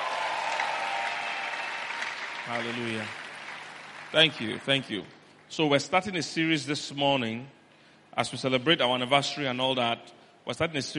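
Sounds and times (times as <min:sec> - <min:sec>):
audience applause: 0:00.0 - 0:05.4
speech: 0:02.5 - 0:03.2, 0:04.1 - 0:07.6, 0:08.2 - 0:10.9.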